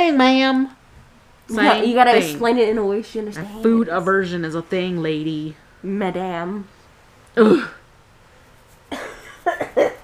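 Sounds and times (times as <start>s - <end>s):
speech: 0.1s - 0.8s, 1.5s - 6.8s, 7.4s - 7.8s
person coughing harshly: 7.4s - 7.8s, 8.9s - 10.0s.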